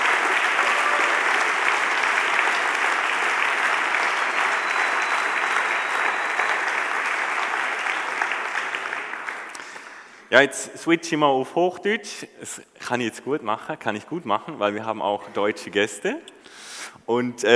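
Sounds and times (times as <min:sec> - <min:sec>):
large audience applauding: 0:00.0 - 0:10.2
speech: 0:10.3 - 0:17.5.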